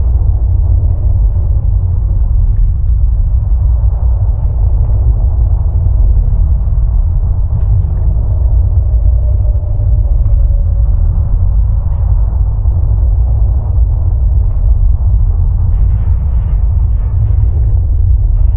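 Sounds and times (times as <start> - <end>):
black hole ambience: 0.0 - 18.5.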